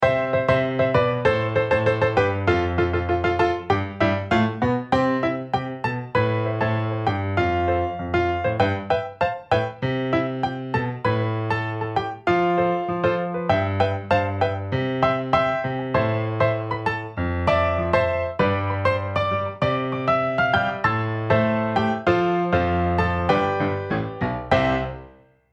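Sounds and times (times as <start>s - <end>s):
solo piano: 0.0s - 25.5s.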